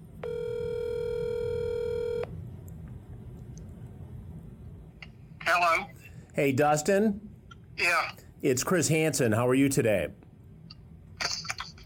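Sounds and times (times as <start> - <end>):
ringback tone of an outgoing call to a cell phone: 0.2 - 2.3
speech: 5.5 - 10.2.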